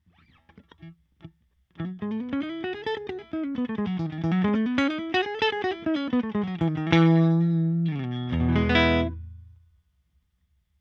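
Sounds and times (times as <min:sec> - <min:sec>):
Jaguar electric guitar solo through Fender Twin Reverb amplifier: 0:01.8 - 0:09.6.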